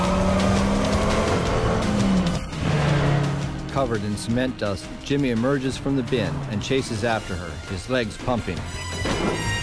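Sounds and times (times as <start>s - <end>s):
convertible car peeling out and speeding away at night: 0.0s - 3.7s
speech: 3.8s - 9.5s.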